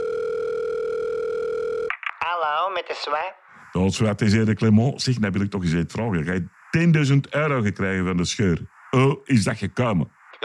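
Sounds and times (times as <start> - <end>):
steady telephone dial tone: 0.0 - 1.9
speech: 2.8 - 10.2.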